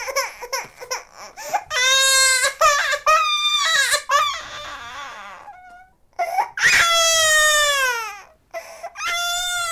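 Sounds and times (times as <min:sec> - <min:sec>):
baby wailing and sobbing: 0:00.0 - 0:09.6.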